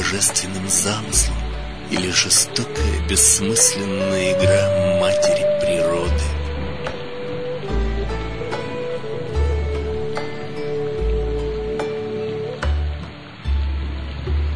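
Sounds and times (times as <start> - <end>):
deep rumbling swells: 0.0 - 14.5
steady rain falling: 0.0 - 14.5
speech: 0.1 - 5.4.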